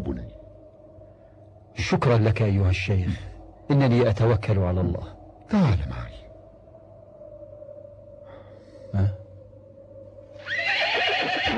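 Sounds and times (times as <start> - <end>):
steady hum: 0.0 - 11.0
speech: 1.9 - 6.2
horse neighing: 10.4 - 11.5.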